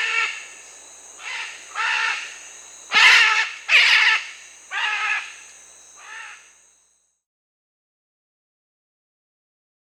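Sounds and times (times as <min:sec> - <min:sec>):
Red-and-green macaw Ara chloroptera calling in Bolivia and Peru: 0:00.0 - 0:00.5, 0:01.2 - 0:06.5
steady high hum: 0:00.0 - 0:07.2.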